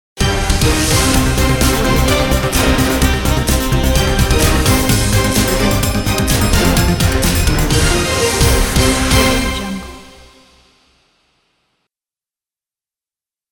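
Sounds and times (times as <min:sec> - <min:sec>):
breaking news logo intro jingle: 0:00.2 - 0:10.2.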